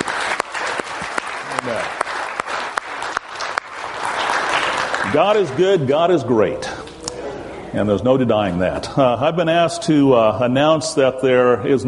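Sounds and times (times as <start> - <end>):
church congregation applauding: 0.0 - 6.0
speech: 1.6 - 2.0, 5.1 - 6.8, 7.7 - 11.8.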